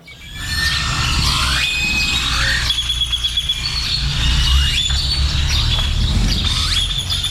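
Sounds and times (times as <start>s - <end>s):
dawn chorus of birds singing and chirping: 0.0s - 7.2s
low rumble: 0.0s - 7.2s.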